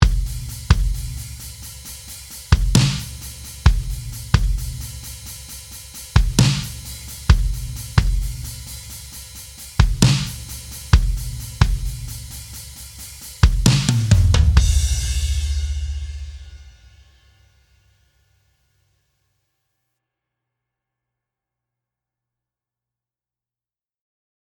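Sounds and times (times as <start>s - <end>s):
low tuned drums: 0.0s - 17.3s.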